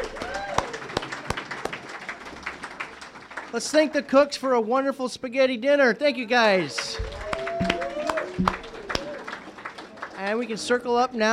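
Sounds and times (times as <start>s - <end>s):
small audience applauding: 0.0s - 4.1s, 6.6s - 11.3s
speech: 3.5s - 7.1s, 10.2s - 11.3s
room noise: 7.0s - 9.0s.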